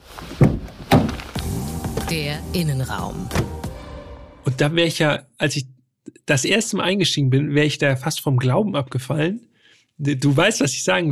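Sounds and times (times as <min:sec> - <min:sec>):
car door latch releasing and door swinging open: 0:00.4 - 0:02.2, 0:03.3 - 0:03.7
speech: 0:02.1 - 0:03.6, 0:04.4 - 0:11.1.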